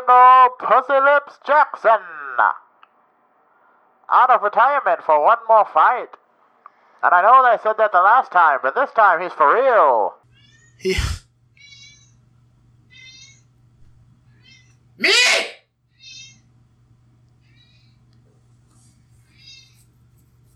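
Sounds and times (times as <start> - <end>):
speech: 0.1 - 2.6, 4.1 - 6.2, 7.0 - 10.2, 10.8 - 11.2, 15.0 - 15.6
loud cat meows: 12.9 - 13.4, 14.4 - 16.4.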